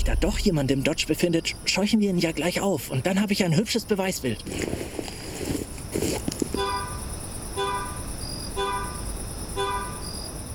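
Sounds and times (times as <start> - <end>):
outdoor noise: 0.0 - 10.5
speech: 0.1 - 5.2
car horn honking: 6.6 - 7.0, 7.6 - 8.0, 8.6 - 9.0, 9.6 - 10.0.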